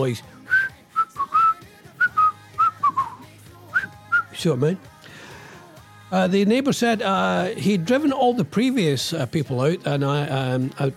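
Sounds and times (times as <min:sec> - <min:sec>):
speech: 0:00.0 - 0:00.4, 0:04.4 - 0:04.9, 0:06.1 - 0:10.9
person whistling a short bouncy tune: 0:00.4 - 0:04.4.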